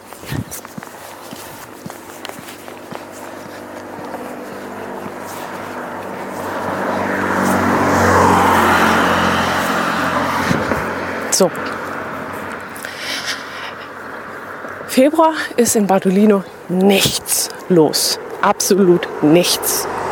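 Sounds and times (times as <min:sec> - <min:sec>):
footsteps crunching: 0:00.0 - 0:19.0
car passing on a street in Bardolino: 0:03.0 - 0:14.9, 0:17.5 - 0:20.1
speech: 0:11.4 - 0:11.7, 0:15.0 - 0:20.0.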